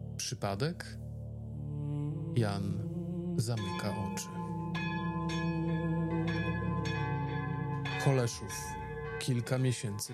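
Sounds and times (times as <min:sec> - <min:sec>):
speech: 0:00.2 - 0:01.1, 0:02.3 - 0:04.4, 0:08.1 - 0:10.1
church bells ringing an urgent alarm: 0:03.7 - 0:10.1.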